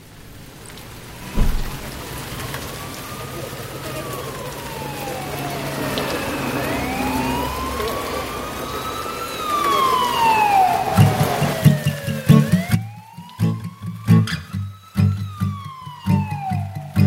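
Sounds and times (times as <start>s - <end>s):
faint sirens wailing: 0.0s - 17.0s
rain on a window pane: 0.0s - 17.0s
dull thump: 1.3s - 1.9s.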